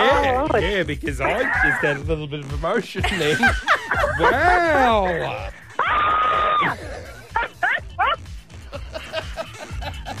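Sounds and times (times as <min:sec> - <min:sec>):
lively talking: 0:00.0 - 0:08.2
speech: 0:00.4 - 0:06.8
laughter: 0:03.0 - 0:04.9, 0:06.4 - 0:10.1
woman screaming with excitement: 0:05.8 - 0:06.8.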